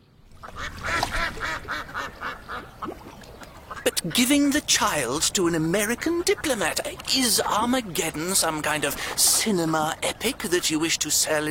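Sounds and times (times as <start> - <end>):
ducks quacking: 0.4 - 11.4
speech: 4.0 - 11.4.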